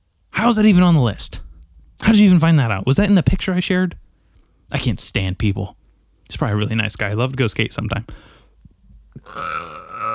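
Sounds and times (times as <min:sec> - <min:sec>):
speech: 0:00.4 - 0:01.4, 0:02.0 - 0:04.0, 0:04.7 - 0:08.3, 0:09.2 - 0:09.7
long raspy belch: 0:09.2 - 0:10.1.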